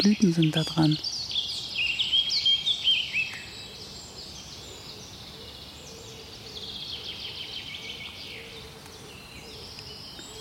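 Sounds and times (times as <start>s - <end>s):
speech: 0.0s - 1.1s
faint birdsong in a forest: 0.0s - 10.3s
steady hiss: 0.0s - 10.3s.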